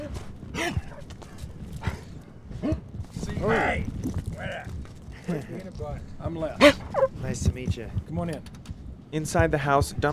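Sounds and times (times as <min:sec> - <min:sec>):
low rumble of outdoor noise: 0:00.0 - 0:10.1
speech: 0:05.3 - 0:10.1
dog barking: 0:06.6 - 0:07.2.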